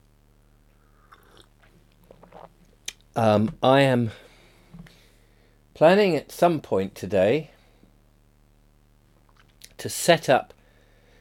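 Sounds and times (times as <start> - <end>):
soft slurping mouth noises sipping a drink: 1.0 - 3.0
speech: 3.2 - 4.2, 5.8 - 7.5, 9.8 - 10.6.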